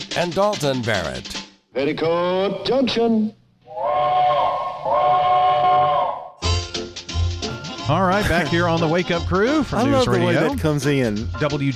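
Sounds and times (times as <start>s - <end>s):
speech: 0.2s - 3.4s, 7.9s - 11.7s
train whistle blasts: 3.7s - 6.6s.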